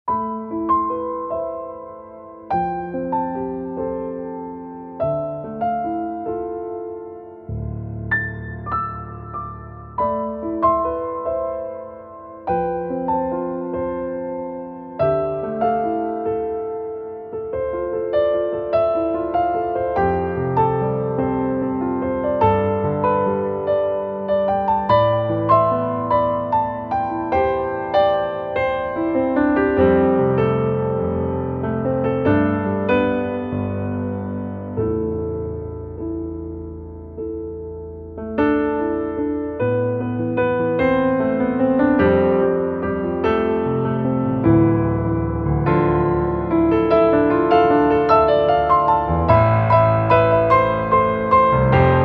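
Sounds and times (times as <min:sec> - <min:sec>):
emotional sad piano background music: 0:00.1 - 0:52.0.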